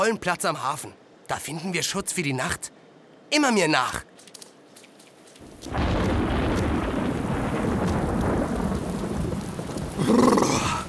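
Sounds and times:
speech: 0.0s - 4.2s
heavy rain pouring: 5.4s - 10.8s
deep rumbling thunder: 5.6s - 10.8s.

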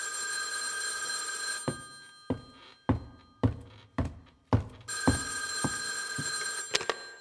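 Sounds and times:
telephone ringing: 0.0s - 3.4s, 4.9s - 7.1s
telephone dial clicks: 6.3s - 7.1s.

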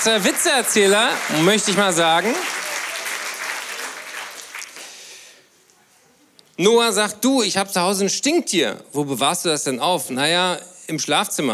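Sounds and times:
speech: 0.0s - 2.6s, 6.6s - 11.5s
applause from a small group: 0.0s - 5.4s.

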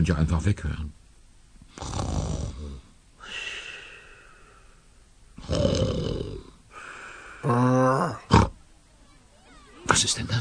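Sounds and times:
speech: 0.0s - 1.0s, 7.4s - 8.3s, 10.0s - 10.4s
person performing exaggerated snoring with whistling wheeze and snort: 1.7s - 2.9s, 5.4s - 6.6s, 7.4s - 8.6s.

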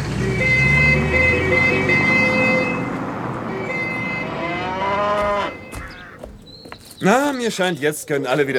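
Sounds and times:
cow mooing in long drawn-out bellows: 0.1s - 6.2s
speech: 7.0s - 8.5s.

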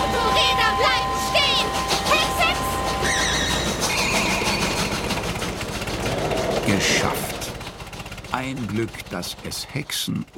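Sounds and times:
shrill metallic squeals of a passing train: 0.0s - 8.2s
train thundering past: 0.0s - 10.1s
rhythmic train wheel clatter: 0.0s - 10.3s
speech: 8.4s - 10.3s.

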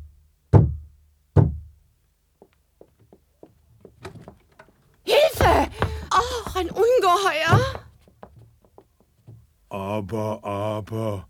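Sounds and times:
heavy knocks on a door: 0.5s - 1.8s, 5.4s - 8.5s
faint taps: 2.4s - 9.5s
speech: 6.6s - 7.8s, 9.9s - 11.2s.

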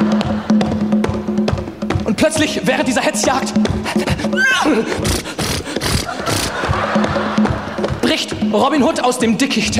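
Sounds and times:
laughter: 0.0s - 0.9s, 4.4s - 8.4s
speech: 2.2s - 6.0s, 8.1s - 9.7s
horse whinnying: 4.3s - 6.6s.

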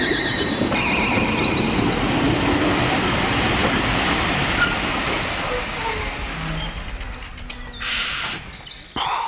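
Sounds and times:
high-pitched train wheel squeal: 0.0s - 9.0s
train rumbling in with broadband rail noise: 0.0s - 9.2s
train brakes hissing and grinding: 0.8s - 9.0s.

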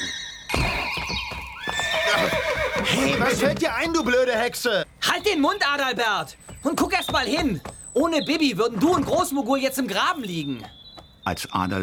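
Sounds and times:
horse neighing loudly as it jumps back: 0.0s - 3.7s
dull hoof thuds: 0.5s - 11.2s
speech: 3.0s - 11.8s.

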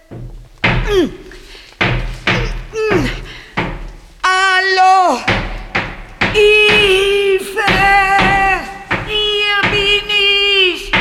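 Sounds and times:
wooden handle thudding against a hatch: 0.0s - 4.1s, 5.2s - 10.9s
speech: 0.9s - 1.2s.

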